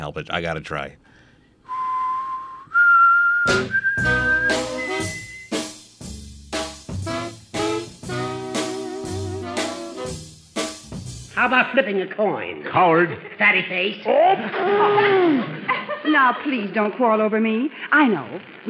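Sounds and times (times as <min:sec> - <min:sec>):
speech: 0:00.0 - 0:01.1, 0:11.4 - 0:18.6
person whistling a theme melody: 0:01.7 - 0:05.6
loud punchy instrumental music with strong chords: 0:03.5 - 0:11.3
laughter: 0:13.0 - 0:17.2.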